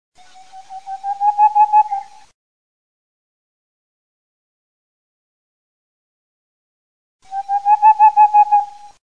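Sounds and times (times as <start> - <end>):
little owl: 0.2 - 2.3, 7.3 - 9.0.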